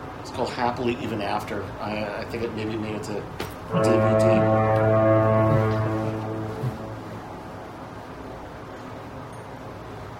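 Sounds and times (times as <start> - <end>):
speech: 0.2 - 5.7
distant foghorn blast in San Francisco: 3.7 - 8.1.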